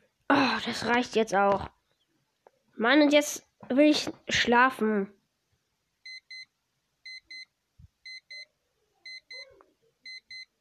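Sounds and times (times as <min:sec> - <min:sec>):
speech: 0:00.6 - 0:01.8, 0:02.8 - 0:05.2
digital alarm clock beeping: 0:06.0 - 0:08.5, 0:09.1 - 0:10.5.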